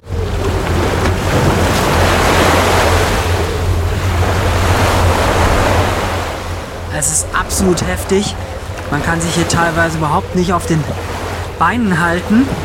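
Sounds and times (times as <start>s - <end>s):
loud roaring stormy sea surf crashing: 0.0s - 12.6s
strong gusting wind buffeting the microphone: 0.0s - 12.6s
speech: 7.0s - 12.6s.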